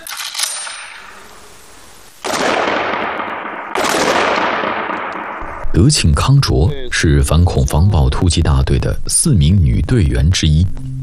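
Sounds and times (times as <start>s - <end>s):
pistol gunshots from police special forces live-fire practice at a shooting range: 2.2s - 5.4s
speech: 5.8s - 10.9s.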